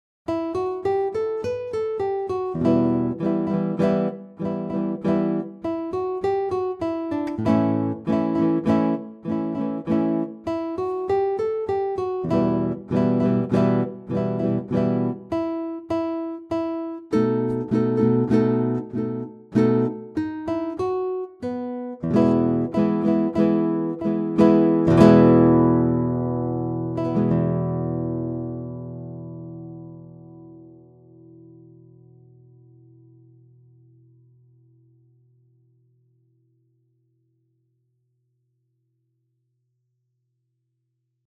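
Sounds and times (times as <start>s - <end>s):
strumming: 0.3s - 32.2s.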